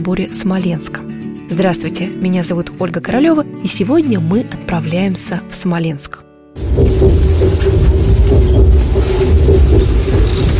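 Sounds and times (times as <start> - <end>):
speech: 0.0 - 6.2
electric commuter train rolling along the rails: 6.6 - 10.5.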